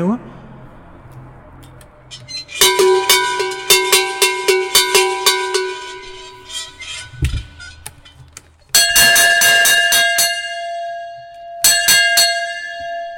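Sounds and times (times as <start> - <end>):
sheet-metal cowbell clanking: 2.1 - 13.1
cast cowbell ringing: 2.5 - 6.7, 8.8 - 13.1.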